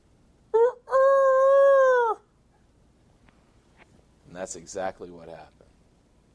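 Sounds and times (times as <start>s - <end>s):
rooster crowing: 0.5s - 2.3s
speech: 4.4s - 5.6s.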